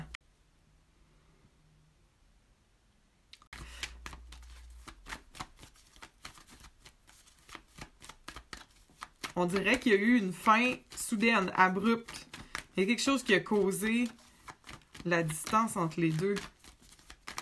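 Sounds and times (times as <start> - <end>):
tarot cards being shuffled and handled: 3.6 - 17.4
speech: 9.4 - 12.2, 12.8 - 14.2, 15.0 - 16.6.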